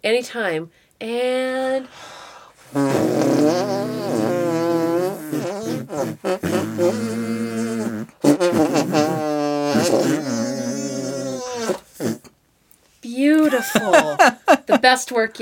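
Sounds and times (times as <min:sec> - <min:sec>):
speech: 0:00.0 - 0:04.3, 0:05.9 - 0:10.9, 0:13.0 - 0:15.3
musical arm farts: 0:02.7 - 0:12.3
laughter: 0:13.4 - 0:14.9.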